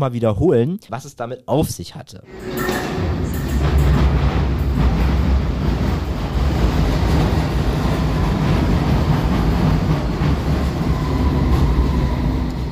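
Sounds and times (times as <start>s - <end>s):
speech: 0.0s - 3.1s
underground train wheels rattling: 2.3s - 12.4s
underground metro train rumbling at Victoria Station in London: 2.3s - 12.7s.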